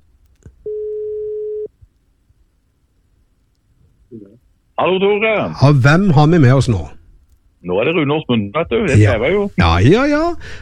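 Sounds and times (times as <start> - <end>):
faint noise: 0.0 - 10.6
telephone ringing tone: 0.7 - 1.7
speech: 4.8 - 7.0, 7.6 - 10.6.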